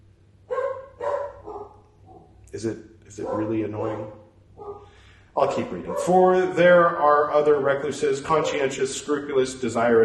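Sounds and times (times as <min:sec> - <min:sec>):
puppy barking with short high-pitched yaps: 0:00.5 - 0:02.4, 0:03.2 - 0:05.0, 0:05.6 - 0:06.3
speech: 0:02.5 - 0:10.0.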